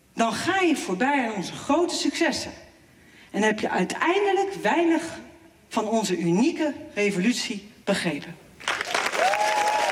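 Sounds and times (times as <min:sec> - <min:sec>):
speech: 0:00.2 - 0:02.7, 0:03.3 - 0:08.4
large audience applause after a speech on a political party: 0:08.6 - 0:09.9.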